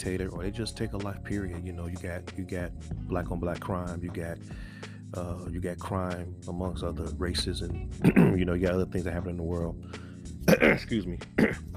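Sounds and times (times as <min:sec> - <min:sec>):
speech: 0:00.0 - 0:11.7
rough coughs: 0:08.0 - 0:08.4, 0:10.4 - 0:11.7.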